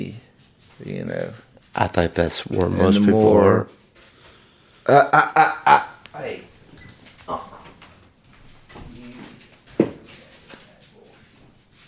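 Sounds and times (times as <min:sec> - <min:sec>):
speech: 0:00.8 - 0:03.8, 0:04.8 - 0:06.5
person's voice: 0:02.4 - 0:03.7
dog whimpering: 0:02.7 - 0:03.4.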